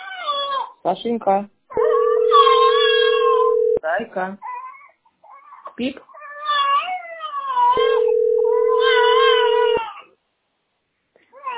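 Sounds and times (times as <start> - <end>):
speech: 0.8 - 1.6, 4.0 - 4.5, 5.8 - 6.1
cat meowing: 2.3 - 3.8, 6.4 - 9.9.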